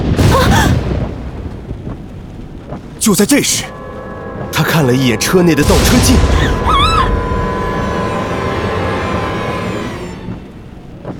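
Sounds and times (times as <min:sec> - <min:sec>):
thunder from a lightning strike: 0:00.0 - 0:02.0, 0:05.2 - 0:09.2
speech: 0:03.0 - 0:03.8, 0:04.6 - 0:06.8.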